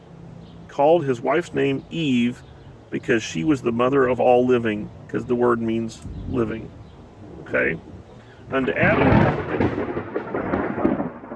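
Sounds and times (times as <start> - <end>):
faint hiss of rain: 0.1 - 11.3
speech: 0.8 - 6.8, 7.5 - 7.9, 8.5 - 10.0
deep continuous rumble of thunder from an approaching thunderstorm: 6.0 - 11.3.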